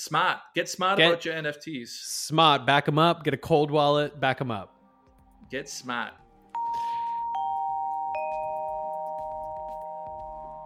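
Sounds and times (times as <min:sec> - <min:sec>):
speech: 0:00.0 - 0:04.8, 0:05.5 - 0:06.2
doorbell chiming: 0:06.6 - 0:10.6.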